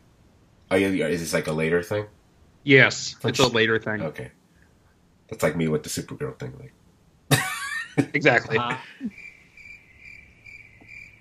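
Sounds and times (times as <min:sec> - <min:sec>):
faint steady trill: 0:00.0 - 0:11.1
speech: 0:00.7 - 0:04.4, 0:05.3 - 0:06.8, 0:08.0 - 0:09.2
crickets chirping sound effect: 0:08.6 - 0:11.1.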